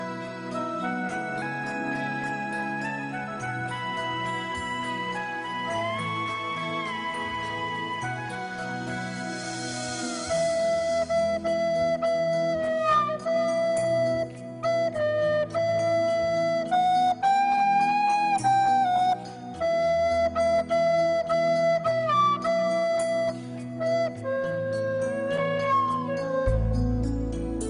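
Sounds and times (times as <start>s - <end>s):
comic flute playing a film theme: 0.0s - 27.6s.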